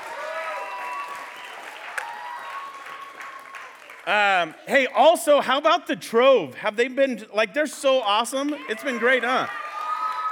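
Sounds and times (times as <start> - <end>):
audience applauding: 0.0 - 4.7, 8.4 - 10.3
speech: 4.1 - 9.6.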